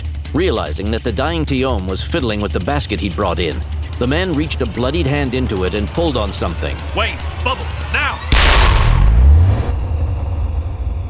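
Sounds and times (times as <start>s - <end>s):
speech: 0.3s - 8.8s
deep sustained rumble: 1.2s - 11.0s
loud explosion: 8.2s - 11.0s.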